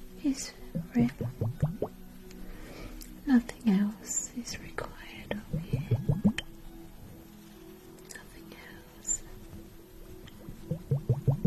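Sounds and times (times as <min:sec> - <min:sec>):
speech: 0:00.2 - 0:01.8, 0:03.3 - 0:05.2
liquid bubbling and dripping: 0:00.8 - 0:02.0, 0:05.6 - 0:06.5, 0:10.7 - 0:11.4
faint whispering: 0:03.8 - 0:06.0, 0:08.1 - 0:09.6.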